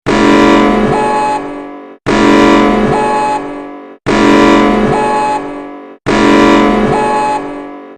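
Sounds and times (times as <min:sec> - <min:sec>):
emergency alert system alarm in Greece: 0:00.1 - 0:07.9.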